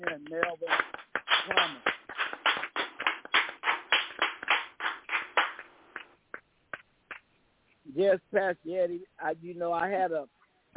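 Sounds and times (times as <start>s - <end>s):
crowd applauding: 0.0s - 7.2s
speech: 0.3s - 0.8s, 8.0s - 10.7s.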